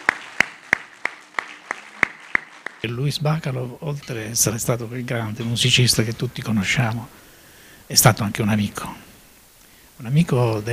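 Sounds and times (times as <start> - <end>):
hands clapping at an orchestral concert: 0.0 - 3.0
speech: 2.8 - 7.2, 7.9 - 9.1, 10.0 - 10.7.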